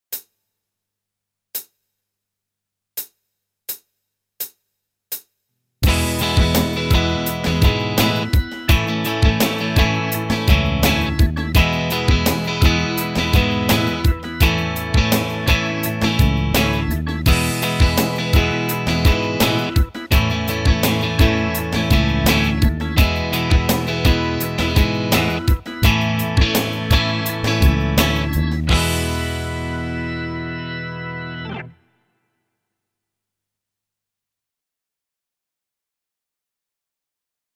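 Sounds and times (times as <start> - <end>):
strumming patterns: 5.8 - 31.8.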